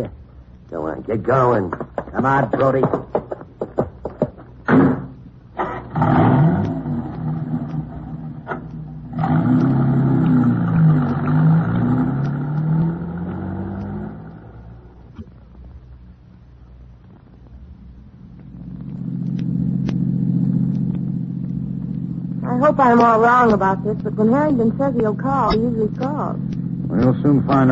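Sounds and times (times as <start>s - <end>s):
speech: 0.0s - 3.2s, 22.8s - 27.7s
sharp thuds: 1.7s - 9.0s
low rumble: 4.4s - 27.7s
car engine turning over, revving and driving away: 4.6s - 15.0s, 18.4s - 27.7s.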